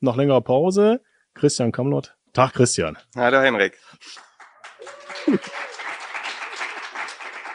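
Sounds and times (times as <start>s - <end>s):
speech: 0.0s - 5.7s
modest crowd applause in an air-conditioned library: 4.2s - 7.5s.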